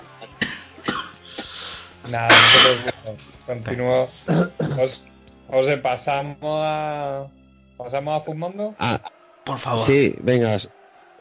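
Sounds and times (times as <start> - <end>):
harsh coughs: 0.2 - 1.6, 2.3 - 3.1, 4.3 - 5.0, 8.8 - 9.1
speech: 2.1 - 11.1.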